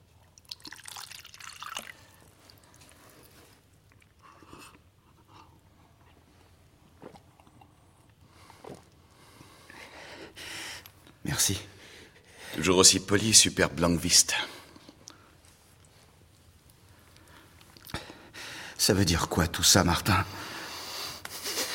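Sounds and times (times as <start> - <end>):
person drinking water: 0.2 - 6.2, 6.9 - 9.1
speech: 11.4 - 11.7, 12.6 - 14.5, 18.9 - 20.4.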